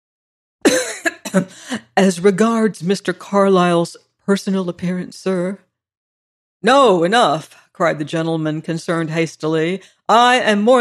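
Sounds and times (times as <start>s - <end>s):
man giving a double cough: 0.7s - 1.8s
speech: 1.3s - 5.6s, 6.6s - 10.7s.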